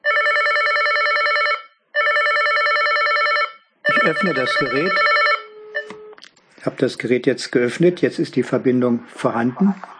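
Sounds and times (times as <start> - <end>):
slide mobile phone ringing with an incoming call: 0.0 - 6.2
speech: 4.0 - 5.2, 6.6 - 9.9.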